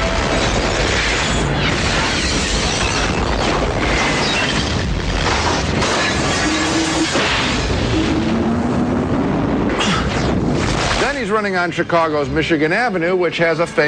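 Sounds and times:
debris shattering and crashing: 0:00.0 - 0:08.0
laboratory explosion roar from a movie: 0:00.0 - 0:11.4
speech: 0:11.4 - 0:13.8.

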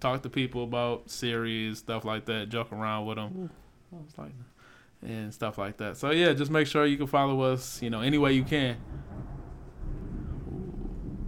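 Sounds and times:
speech: 0:00.0 - 0:09.3
deep continuous rumble of thunder: 0:07.8 - 0:11.2.

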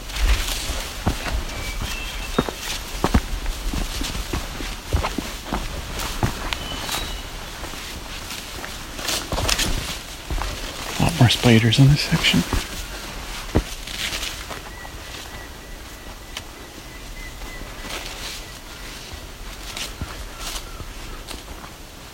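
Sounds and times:
crunching footsteps along the edge of an escarpment: 0:00.0 - 0:22.1
speech: 0:11.3 - 0:12.7.

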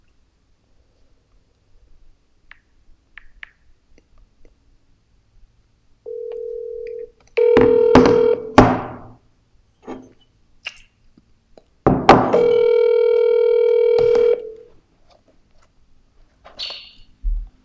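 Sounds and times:
electronic telephone ring: 0:06.1 - 0:08.6, 0:12.4 - 0:14.6
telephone handset clicks and knocks: 0:07.5 - 0:08.8.

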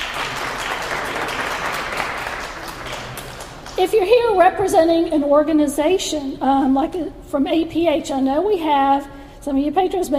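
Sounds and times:
audience clapping hands: 0:00.0 - 0:03.8
speech: 0:03.8 - 0:10.1.

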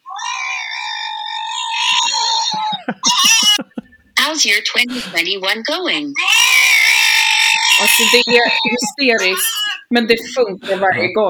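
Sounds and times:
dog screaming: 0:00.0 - 0:03.6, 0:06.1 - 0:09.9
laughter: 0:02.4 - 0:05.8, 0:07.8 - 0:09.5, 0:10.2 - 0:11.2
speech: 0:04.3 - 0:06.7, 0:07.8 - 0:11.2.

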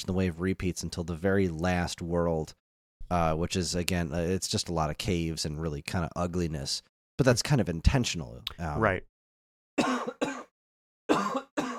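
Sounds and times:
speech: 0:00.0 - 0:09.1
harsh coughs: 0:09.8 - 0:11.7.

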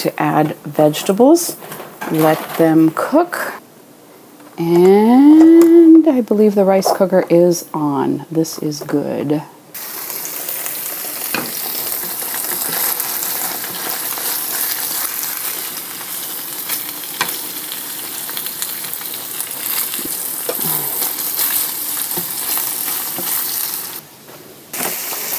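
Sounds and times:
speech: 0:00.0 - 0:03.6, 0:04.6 - 0:09.6
salmon frying in a pan: 0:09.8 - 0:24.0, 0:24.7 - 0:25.3.

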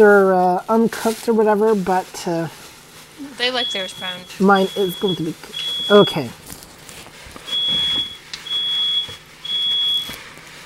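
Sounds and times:
speech: 0:00.0 - 0:02.6, 0:03.3 - 0:06.4
smoke alarm high-pitched beeping: 0:03.4 - 0:06.4, 0:07.4 - 0:10.2.

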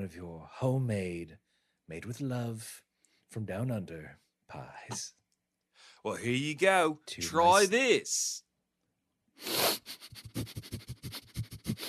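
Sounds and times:
speech: 0:00.0 - 0:05.2, 0:05.8 - 0:08.4, 0:09.4 - 0:10.9
person sniffing a homemade pie: 0:09.4 - 0:11.8.

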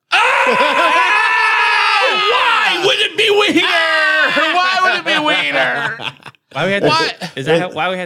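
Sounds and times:
person screaming at the top of their lungs: 0:00.1 - 0:06.1
laughter: 0:00.4 - 0:01.4, 0:02.0 - 0:07.8
speech: 0:00.5 - 0:00.9, 0:03.0 - 0:08.0.

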